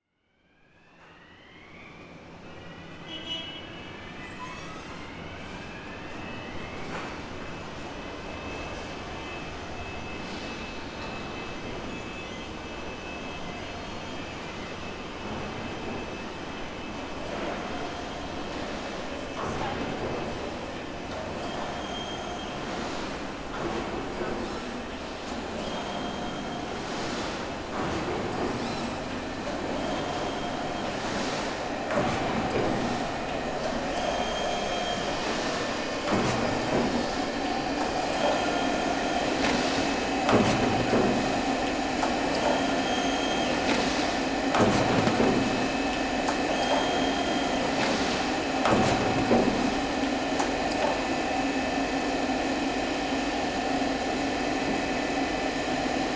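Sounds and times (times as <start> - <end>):
tyre factory siren: 0.0 - 3.0, 4.1 - 11.2
tyre factory floor machine noise: 0.5 - 56.1
forklift horn in a tyre factory: 3.0 - 4.0.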